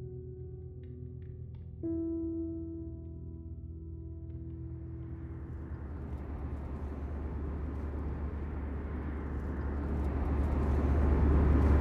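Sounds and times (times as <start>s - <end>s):
low airplane engine drone in a cabin in flight: 3.6s - 11.7s.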